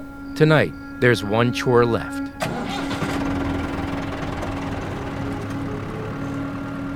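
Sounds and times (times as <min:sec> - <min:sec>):
speech: 0:00.4 - 0:02.6
tractor engine running on a farm while driven into a barn: 0:02.3 - 0:06.9.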